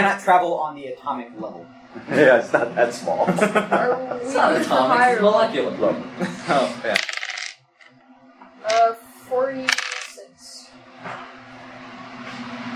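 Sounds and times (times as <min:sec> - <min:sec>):
speech: 0:00.0 - 0:07.1
laughter: 0:02.0 - 0:04.9, 0:05.9 - 0:07.0
tile dice clattering across a hard tabletop: 0:07.0 - 0:07.6, 0:09.6 - 0:10.2.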